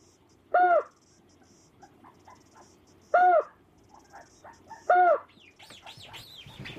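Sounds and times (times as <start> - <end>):
faint chirps: 0.0 - 6.7
recorded white-faced storm petrel calls broadcast through a loudspeaker: 0.5 - 1.0, 2.1 - 6.7.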